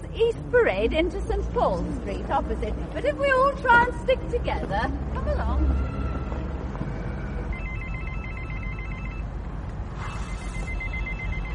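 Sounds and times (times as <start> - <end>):
steady rumble of outdoor street noise: 0.0 - 11.5
speech: 0.2 - 6.0
mobile phone ringing with a warbling electronic trill: 5.7 - 9.4, 10.2 - 11.5.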